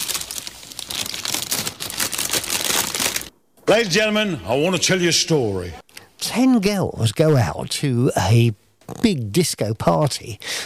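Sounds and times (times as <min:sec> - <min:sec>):
paper instruction sheets being shuffled: 0:00.0 - 0:03.3
speech: 0:03.7 - 0:10.6.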